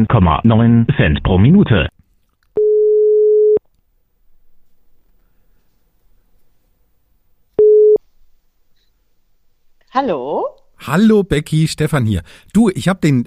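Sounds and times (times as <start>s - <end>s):
speech: 0.0s - 2.0s, 9.9s - 13.2s
faint room noise: 0.2s - 13.2s
telephone ringback tone while placing a call: 2.6s - 3.6s, 7.6s - 8.0s.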